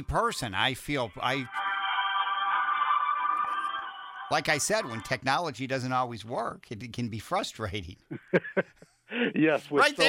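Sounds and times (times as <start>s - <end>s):
speech: 0.0s - 1.6s, 4.3s - 10.0s
cell phone ringing with a bright electronic tone: 1.3s - 5.1s.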